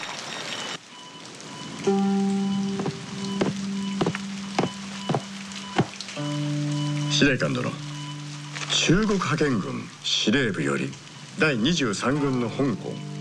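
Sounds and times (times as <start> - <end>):
rain falling: 0.0 - 13.1
sharp drips or knocks: 1.1 - 9.4
speech: 1.8 - 2.1, 7.2 - 7.9, 8.7 - 13.1.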